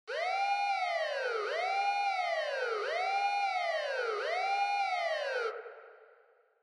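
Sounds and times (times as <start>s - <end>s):
fast police car siren with fake reverb: 0.1s - 5.6s.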